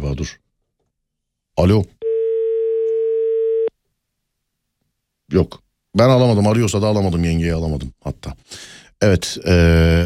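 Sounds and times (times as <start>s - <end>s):
speech: 0.2s - 0.4s, 1.6s - 2.0s, 5.3s - 10.0s
telephone dial tone during a phone call: 2.0s - 3.7s.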